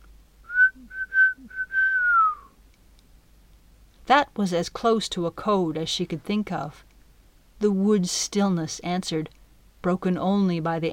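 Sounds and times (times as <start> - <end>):
woman whistling an imitation of a rooster's crow through puckered lips: 0.5 - 2.5
speech: 4.1 - 6.9, 7.6 - 10.9.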